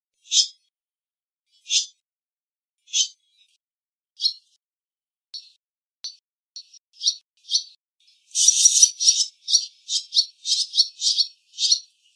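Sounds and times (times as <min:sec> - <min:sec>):
barn swallow twittering: 0:01.6 - 0:02.0, 0:04.2 - 0:04.4, 0:05.4 - 0:12.1.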